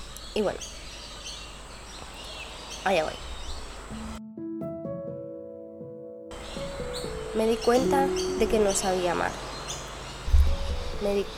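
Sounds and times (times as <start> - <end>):
small birds chirping outdoors in nature: 0.0 - 4.2, 6.3 - 11.3
steady airy hiss: 0.0 - 5.3, 6.3 - 11.3
speech: 0.4 - 0.8, 2.8 - 3.3, 3.9 - 4.2, 7.4 - 9.4, 11.0 - 11.3.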